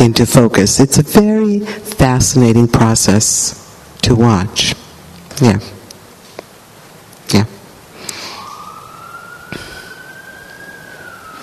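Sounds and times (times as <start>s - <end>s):
speech: 0.0s - 4.8s, 5.4s - 5.8s, 7.3s - 7.5s
soft hiss: 0.0s - 11.4s
emergency vehicle siren wailing outside: 8.1s - 11.4s.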